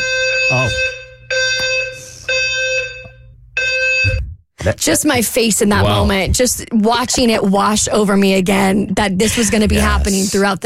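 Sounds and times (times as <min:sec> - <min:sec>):
building fire alarm blaring in harsh buzzy bursts: 0:00.0 - 0:04.3
speech: 0:00.5 - 0:00.9, 0:04.6 - 0:10.6.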